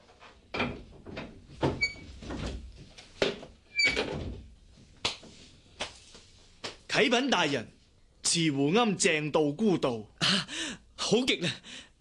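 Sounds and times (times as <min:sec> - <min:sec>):
wooden door clunking and rattling as it is opened: 0:00.5 - 0:02.7, 0:03.3 - 0:04.5
speech: 0:07.0 - 0:11.9.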